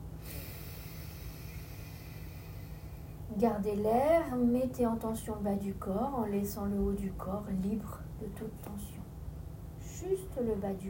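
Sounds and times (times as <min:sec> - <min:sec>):
deep inhalation during a breathing exercise: 0:00.2 - 0:03.3
speech: 0:03.3 - 0:09.0, 0:10.0 - 0:10.8.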